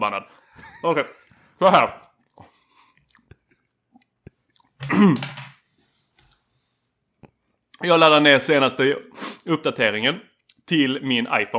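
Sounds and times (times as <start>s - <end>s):
speech: 0.0s - 2.0s, 4.8s - 5.4s, 7.8s - 11.5s
chewing with soft wet clicks and smacks: 2.2s - 4.8s, 10.4s - 10.6s.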